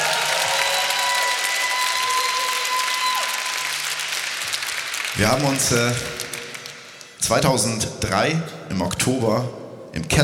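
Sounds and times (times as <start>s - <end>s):
audience applause: 0.0s - 7.0s
speech: 5.2s - 6.3s, 7.3s - 10.2s.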